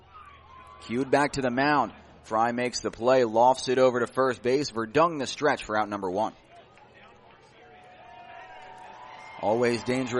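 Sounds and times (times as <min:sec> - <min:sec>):
stadium hubbub: 0:00.0 - 0:10.1
speech: 0:00.8 - 0:06.4, 0:09.4 - 0:10.1
ballpark crowd clapping: 0:06.7 - 0:10.1.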